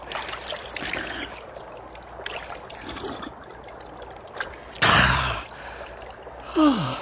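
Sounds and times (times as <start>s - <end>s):
water trickling and splashing: 0.0s - 7.0s
breathy gasp of relief: 6.5s - 7.0s.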